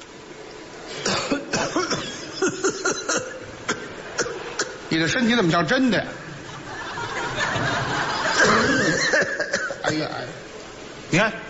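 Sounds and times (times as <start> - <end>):
person staging an exaggerated coughing fit: 1.0 - 4.8, 8.4 - 10.2
speech: 1.6 - 2.0, 5.0 - 6.2, 9.9 - 10.4, 11.1 - 11.4
laughter: 6.4 - 9.6.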